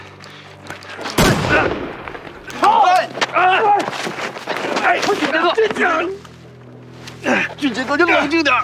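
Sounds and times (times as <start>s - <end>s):
single sharp gunshot during an armed standoff: 1.2s - 2.2s
agitated people shouting: 2.5s - 5.1s
speech: 4.9s - 6.2s, 7.2s - 8.6s.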